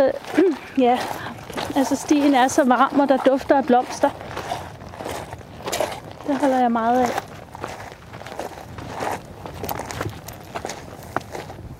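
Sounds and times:
speech: 0:00.0 - 0:04.3, 0:06.3 - 0:07.3
footsteps walking along a warm nature trail beside a cliff: 0:00.0 - 0:11.7.

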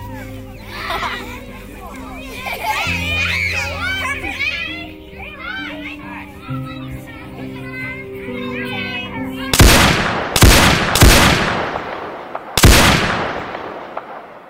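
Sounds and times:
laughter: 0:00.0 - 0:09.5
children chattering playfully: 0:00.0 - 0:12.4
loud sharp gunshots with tails: 0:09.5 - 0:14.4.

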